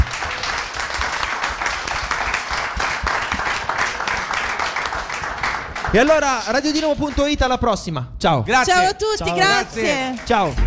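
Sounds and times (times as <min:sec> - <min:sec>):
audience applause at a live show: 0:00.0 - 0:07.3, 0:09.4 - 0:10.6
speech: 0:05.9 - 0:10.6.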